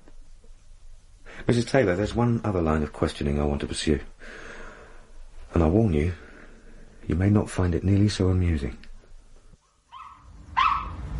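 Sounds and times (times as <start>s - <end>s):
speech: 1.5s - 4.5s, 5.5s - 6.2s, 7.1s - 8.8s
dog barking at a door: 9.6s - 11.1s
low rumble: 10.2s - 11.1s.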